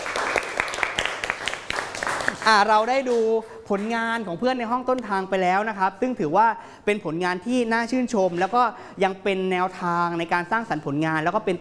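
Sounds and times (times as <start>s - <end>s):
class clapping for a student's dessert-plating work: 0.0s - 3.2s
speech: 2.4s - 11.5s.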